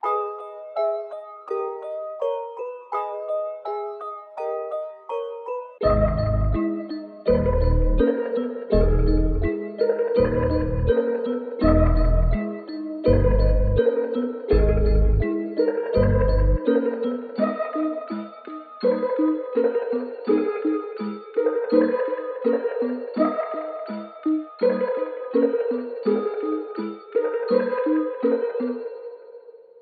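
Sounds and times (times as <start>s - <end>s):
melodies in G sharp minor: 0.0s - 29.4s.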